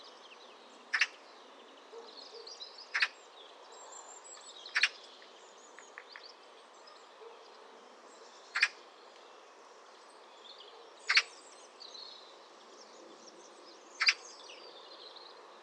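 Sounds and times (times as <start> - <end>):
Eurasian magpie Pica pica uttering harsh grating calls: 0.9 - 1.2, 8.6 - 8.8.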